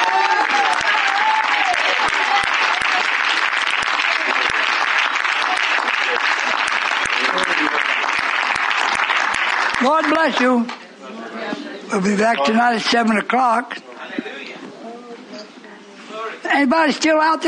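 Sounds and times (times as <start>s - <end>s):
dense crowd applause: 0.0s - 10.6s
speech: 9.9s - 10.8s, 11.9s - 13.7s, 16.6s - 17.4s.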